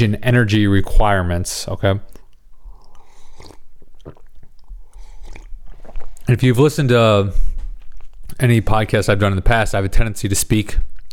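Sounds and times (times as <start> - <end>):
speech: 0.0 - 2.2, 6.3 - 7.5, 8.3 - 11.1
person sipping a drink: 2.1 - 6.4, 7.3 - 8.4.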